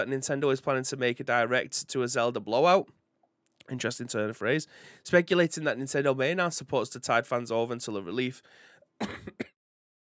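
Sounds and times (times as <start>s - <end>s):
speech: 0.0s - 3.0s, 3.7s - 9.5s
short throat-clearing cough: 9.0s - 9.6s.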